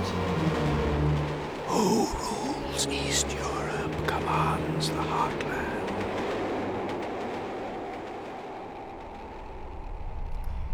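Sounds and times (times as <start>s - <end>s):
passenger train from Reading towards London rumbling along the tracks, heard inside the carriage: 0.0s - 10.7s
speech: 2.8s - 5.8s.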